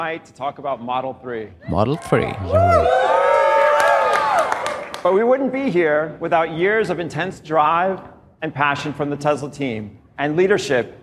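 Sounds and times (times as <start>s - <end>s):
speech: 0.0s - 3.1s, 5.0s - 11.0s
large crowd cheering and whooping: 2.2s - 4.8s.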